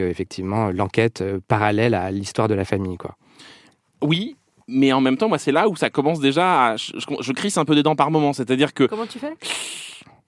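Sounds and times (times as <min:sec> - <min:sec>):
speech: 0:00.0 - 0:09.9
person hissing in imitation of an angry cat: 0:09.4 - 0:10.2.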